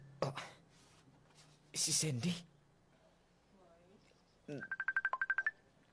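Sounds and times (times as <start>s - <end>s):
speech: 1.8s - 2.5s, 4.5s - 4.8s
cellphone ringing with incoming call: 4.6s - 5.6s.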